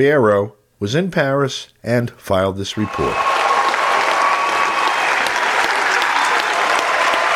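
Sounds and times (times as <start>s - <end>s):
speech: 0.0s - 3.3s
large crowd applauding in a standing ovation at a climate conference: 2.8s - 7.3s.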